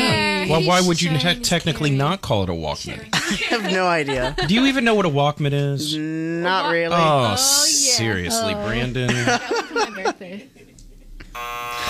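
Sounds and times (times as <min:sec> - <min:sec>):
laughter: 0:00.0 - 0:02.0, 0:03.1 - 0:06.2, 0:06.9 - 0:11.2
speech: 0:00.5 - 0:10.7
harsh electronic buzzer: 0:11.3 - 0:11.8.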